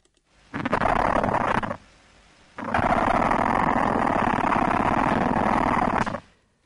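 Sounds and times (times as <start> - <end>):
ant queen stridulating, scraping abdomen: 0.5 - 1.8, 2.6 - 6.3.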